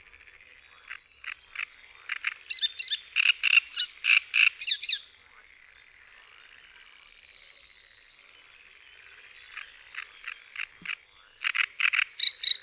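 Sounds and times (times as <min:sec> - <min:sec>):
great reed warbler singing: 0:00.7 - 0:05.1, 0:09.2 - 0:12.6.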